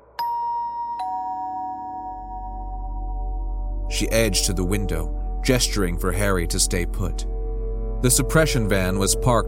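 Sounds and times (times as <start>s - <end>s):
two-tone doorbell chiming: 0.2s - 3.4s
speech: 3.9s - 7.3s, 8.0s - 9.4s.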